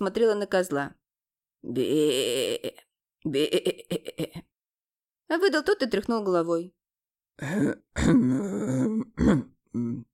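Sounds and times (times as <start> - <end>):
speech: 0.0 - 1.0, 1.6 - 4.5, 5.3 - 6.8, 7.4 - 10.1
human voice imitating a bear coughing: 8.0 - 10.1.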